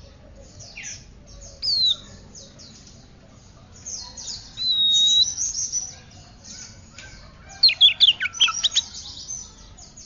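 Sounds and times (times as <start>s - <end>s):
Oriental magpie-robin singing scratchy and buzzy high phrases: 0.6s - 2.1s, 4.0s - 10.0s.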